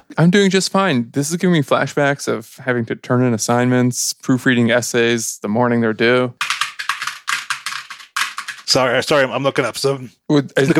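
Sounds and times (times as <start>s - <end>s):
speech: 0.1s - 6.5s, 8.7s - 10.7s
fast typing on a computer keyboard: 6.4s - 9.1s.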